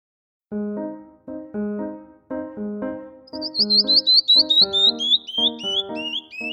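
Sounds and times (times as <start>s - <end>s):
steady tuneful musical accompaniment: 0.6s - 6.5s
bird chirping and tweeting: 3.3s - 6.5s.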